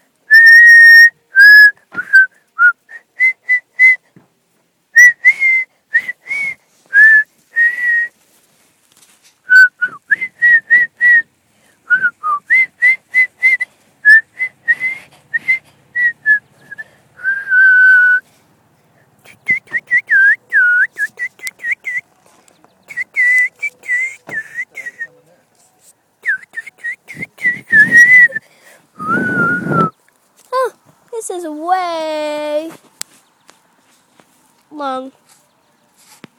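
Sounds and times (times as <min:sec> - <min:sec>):
person whistling a melody: 0:00.3 - 0:04.0, 0:05.0 - 0:08.1, 0:09.5 - 0:11.3, 0:11.9 - 0:18.2, 0:19.3 - 0:22.0, 0:22.9 - 0:25.2, 0:26.2 - 0:28.4, 0:29.0 - 0:30.0.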